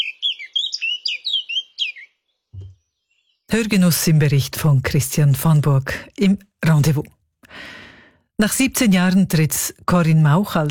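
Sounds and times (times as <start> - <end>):
blackcap singing in a garden in May: 0.0 - 3.5
short low thump: 2.6 - 2.8
speech: 3.5 - 7.2, 8.4 - 10.6.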